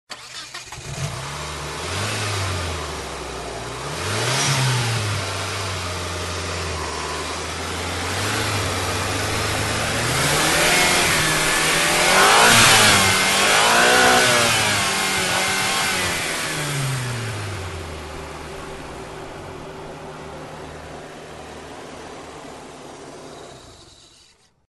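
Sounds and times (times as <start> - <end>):
car engine being started with a starter: 0.1 - 24.6.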